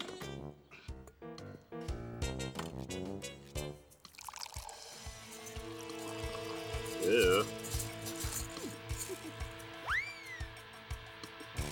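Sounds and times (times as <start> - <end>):
bouncy rhythmic music: 0.0 - 11.7
fresh water pouring to make coffee: 3.9 - 9.8
speech: 7.1 - 7.6.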